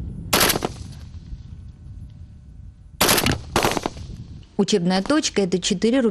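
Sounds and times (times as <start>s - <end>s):
low rumbling: 0.0s - 6.0s
single gunshots: 0.3s - 1.0s, 3.0s - 4.2s
loud bursts of automatic gunfire: 3.0s - 4.0s
speech: 4.6s - 6.0s.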